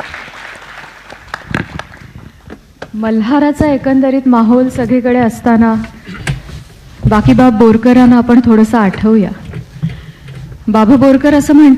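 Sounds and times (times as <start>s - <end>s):
audience applause at a cultural event: 0.0s - 2.2s
speech: 3.0s - 6.0s, 7.1s - 9.4s, 10.7s - 11.7s.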